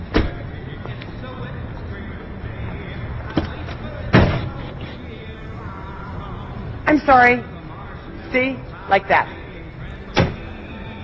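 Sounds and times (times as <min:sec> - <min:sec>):
car door banging hard against another car: 0:00.0 - 0:00.4, 0:03.3 - 0:04.6, 0:10.1 - 0:10.5
speech: 0:06.9 - 0:07.5, 0:08.3 - 0:09.4.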